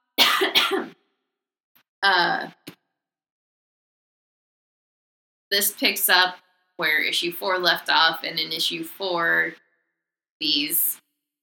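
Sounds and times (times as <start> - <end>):
person coughing harshly: 0.2 - 1.0
speech: 2.0 - 2.6, 5.5 - 9.6, 10.4 - 11.0.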